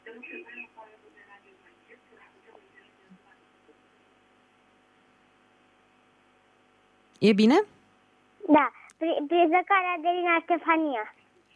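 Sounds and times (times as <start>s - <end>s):
radio chatter in the background of a telephone call: 0.0s - 3.8s
speech: 7.2s - 7.7s, 8.5s - 11.2s.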